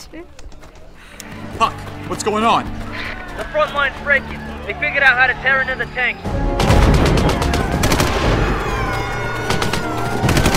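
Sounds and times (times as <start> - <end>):
speech: 0.1 - 0.6, 1.2 - 6.4
heavy booming impacts: 6.3 - 10.4
.50 caliber machine gun fire at a checkpoint under attack: 6.6 - 10.5.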